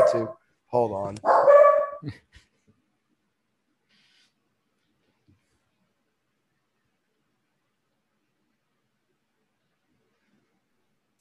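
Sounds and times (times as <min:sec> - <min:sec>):
dogs barking at home: 0:00.0 - 0:00.4, 0:01.2 - 0:02.0
speech: 0:00.1 - 0:02.5.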